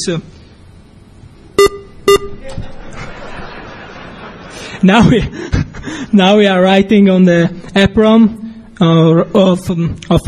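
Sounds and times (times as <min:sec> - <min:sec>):
speech: 0:00.0 - 0:00.5, 0:02.2 - 0:03.1, 0:04.8 - 0:10.2
low hum: 0:00.0 - 0:10.2
short sharp electronic beeps from a device: 0:01.6 - 0:02.5
laughter-like vocal sound: 0:02.4 - 0:06.0.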